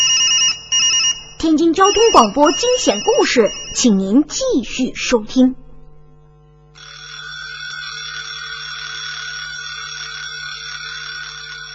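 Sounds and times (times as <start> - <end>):
alarm clock bell ringing loudly: 0.0 - 4.1, 6.8 - 11.7
speech: 1.4 - 5.6.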